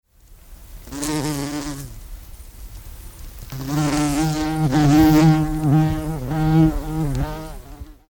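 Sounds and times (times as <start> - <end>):
bumblebee buzzing: 0.9 - 2.0, 3.5 - 8.1.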